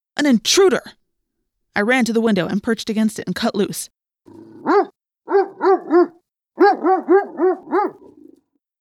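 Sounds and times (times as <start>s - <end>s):
speech: 0.2s - 1.0s, 1.8s - 8.1s
dog barking loudly at intruder: 4.3s - 8.4s.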